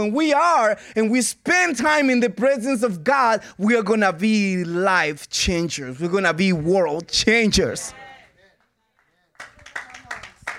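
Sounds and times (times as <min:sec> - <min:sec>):
speech: 0:00.0 - 0:08.0
vocal sound mixed into the applause: 0:07.9 - 0:10.5
audience clapping: 0:08.4 - 0:10.5.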